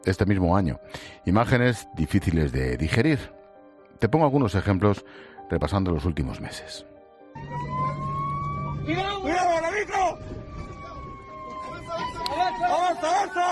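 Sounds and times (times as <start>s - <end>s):
speech: 0.0s - 3.4s, 4.0s - 7.7s
engine rumbling: 7.4s - 11.2s
fire truck siren wailing inside vehicle trapped by fire: 7.4s - 13.4s.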